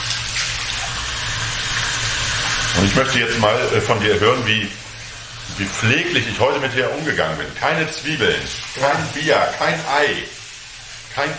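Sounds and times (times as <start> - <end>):
warm tap water running while hair is rinsed: 0.0 - 11.3
speech: 2.8 - 4.8, 5.6 - 10.4, 11.2 - 11.3.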